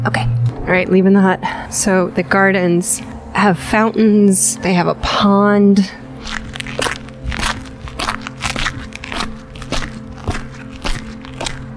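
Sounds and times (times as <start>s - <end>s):
speech: 0.0s - 6.4s
low steady hum: 0.0s - 11.7s
footsteps crunching over gravel on a garden path: 6.2s - 11.7s.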